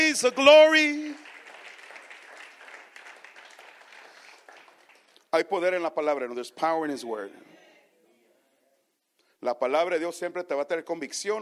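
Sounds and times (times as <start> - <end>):
church congregation applauding: 0.0 - 5.9
speech: 0.2 - 1.1, 5.3 - 7.6, 9.4 - 11.4.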